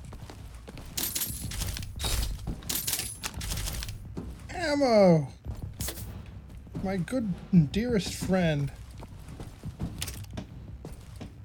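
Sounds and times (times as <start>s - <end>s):
metal door handle on a locked door jiggled and rattled against a latch: 0.8s - 4.0s
speech: 4.6s - 5.4s, 6.8s - 8.8s.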